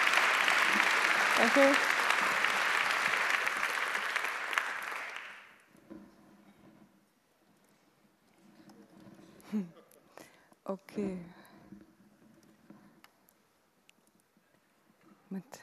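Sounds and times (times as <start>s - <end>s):
lecture audience applauding to welcome the speaker: 0.0s - 5.6s
speech: 1.4s - 2.0s, 9.5s - 9.8s, 10.7s - 11.4s.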